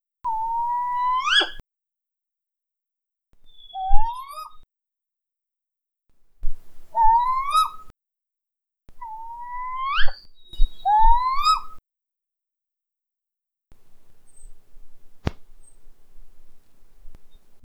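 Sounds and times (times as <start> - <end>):
Northern Spotted Owl whistles: 0.3 - 1.6, 3.5 - 4.5, 7.0 - 7.8, 9.1 - 11.8.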